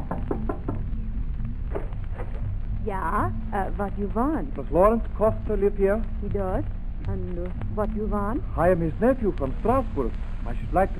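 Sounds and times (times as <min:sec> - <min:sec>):
knuckles knocking on a house door in a small Dutch town: 0:00.0 - 0:00.9
low hum: 0:00.0 - 0:10.9
speech: 0:02.9 - 0:10.9.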